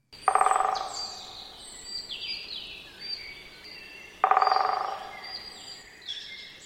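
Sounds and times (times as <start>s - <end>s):
other birds singing softly: 0.0s - 6.6s
great spotted woodpecker drumming: 0.2s - 2.2s, 4.1s - 5.9s.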